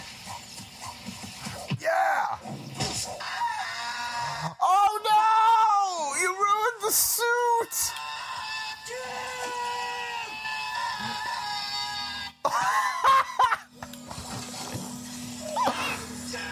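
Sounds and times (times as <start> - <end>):
death scream: 1.8 - 2.5, 3.2 - 6.1, 8.1 - 12.2
sustained electronic tonal background: 7.3 - 16.5.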